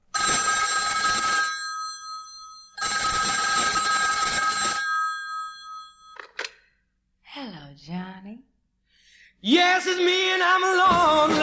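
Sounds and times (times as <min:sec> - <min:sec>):
old-style telephone bell ringing: 0:00.1 - 0:06.5
speech: 0:09.4 - 0:11.4
rock and roll song: 0:09.5 - 0:11.4.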